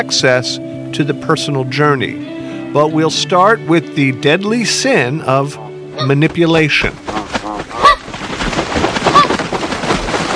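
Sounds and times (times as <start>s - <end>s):
speech: 0.0s - 7.2s
dense rushing rumbling noise: 6.8s - 10.3s
migratory birds calling with goose-like honks: 7.1s - 8.1s, 9.0s - 9.4s.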